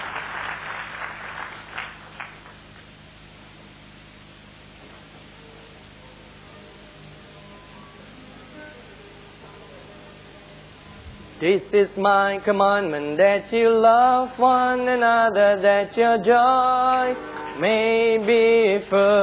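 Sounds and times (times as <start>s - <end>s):
audience applause: 0.0s - 2.6s
room noise hum and hiss: 0.0s - 19.2s
speech: 11.4s - 19.2s.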